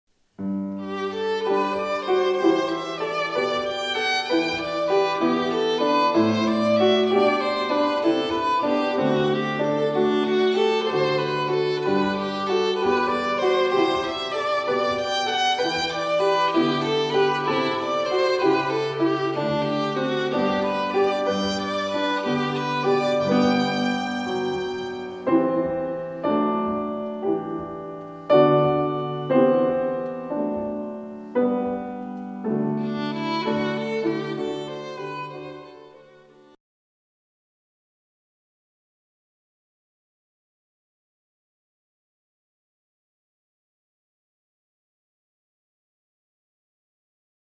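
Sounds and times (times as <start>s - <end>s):
piano: 0.3s - 36.6s
violin: 0.4s - 36.6s.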